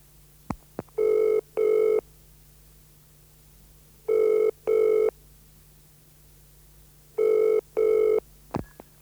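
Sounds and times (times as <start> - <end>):
telephone ringing at a home: 1.0 - 2.0, 4.1 - 5.1, 7.2 - 8.2.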